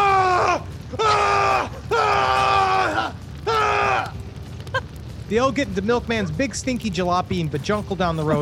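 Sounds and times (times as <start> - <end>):
people screaming as a house burns: 0.0 - 5.0
speech: 5.3 - 8.3.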